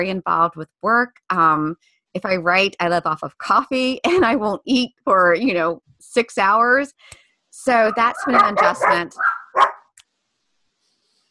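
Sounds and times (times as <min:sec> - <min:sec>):
speech: 0:00.0 - 0:09.7
dog barking: 0:07.9 - 0:09.9.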